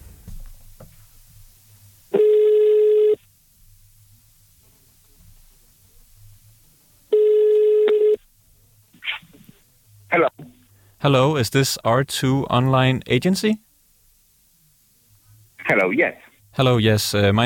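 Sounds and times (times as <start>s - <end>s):
telephone ringback tone of a call to a company in Bucharest Romania: 2.2s - 3.2s, 7.1s - 8.2s
speech: 11.0s - 13.6s, 15.9s - 17.4s.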